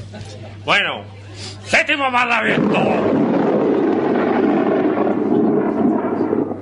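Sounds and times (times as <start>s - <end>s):
speech: 0.1s - 3.3s
thunder rumbling: 2.4s - 6.6s.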